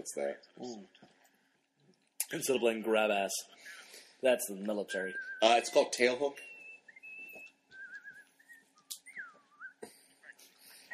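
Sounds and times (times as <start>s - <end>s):
speech: 0.0s - 1.1s, 2.3s - 6.5s
man whistling a sea shanty: 4.9s - 10.9s.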